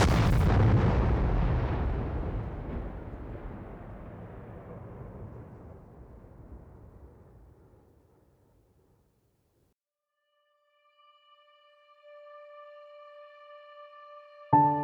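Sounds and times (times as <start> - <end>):
burning ship exploding in a huge deep blast: 0.0 - 7.9.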